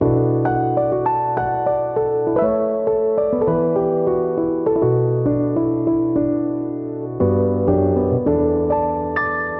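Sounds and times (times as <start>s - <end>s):
inspiring melody in B minor: 0.0s - 9.5s.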